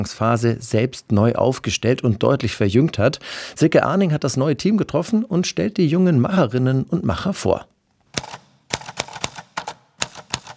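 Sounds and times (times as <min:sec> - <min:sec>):
speech: 0:00.0 - 0:08.4
typewriter keys clacking: 0:08.1 - 0:10.5.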